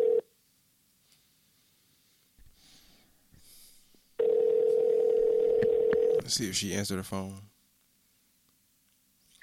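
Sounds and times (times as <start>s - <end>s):
telephone tone as a phone call is dialed: 0.0s - 0.2s, 4.2s - 6.2s
speech: 6.3s - 7.5s.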